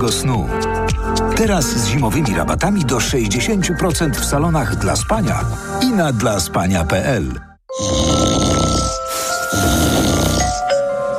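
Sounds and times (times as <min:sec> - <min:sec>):
speech: 0:00.0 - 0:08.3
man snoring with loud rasping rattling inhales: 0:07.7 - 0:10.7.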